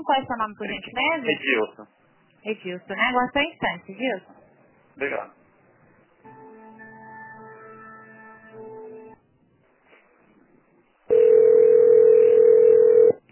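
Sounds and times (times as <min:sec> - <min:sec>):
speech: 0:00.0 - 0:04.4, 0:05.0 - 0:05.4
continuous busy-style telephone tone: 0:11.1 - 0:13.2.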